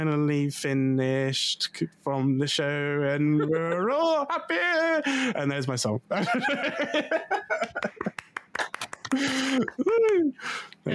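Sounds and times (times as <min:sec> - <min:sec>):
speech: 0:00.0 - 0:08.1, 0:09.1 - 0:10.9
laughter: 0:06.1 - 0:10.3
sharp hand claps: 0:07.6 - 0:10.2.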